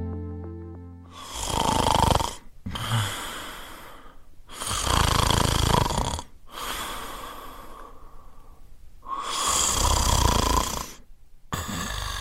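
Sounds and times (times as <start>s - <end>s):
heavy rumbling snoring: 1.1s - 7.3s, 9.1s - 12.1s.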